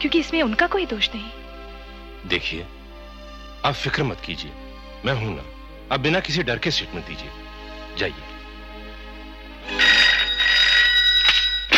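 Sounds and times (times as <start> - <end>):
speech: 0.0 - 1.4, 2.2 - 2.8, 3.6 - 7.4, 8.0 - 8.3
telephone ringing with a trilling electronic tone: 9.7 - 11.7.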